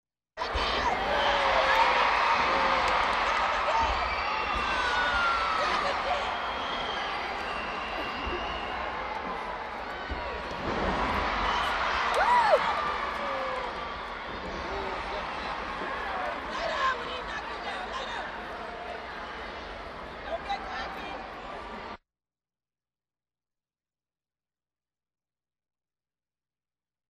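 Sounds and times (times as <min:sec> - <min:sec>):
crowd reacting: 0:00.4 - 0:22.0.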